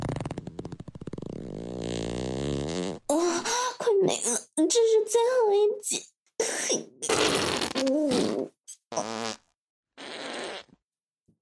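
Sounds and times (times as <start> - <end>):
loud farts, rumbling sputtering and buzzy: 0.0 - 3.1, 7.0 - 10.8
speech: 4.0 - 6.1, 6.7 - 6.9, 7.8 - 9.4.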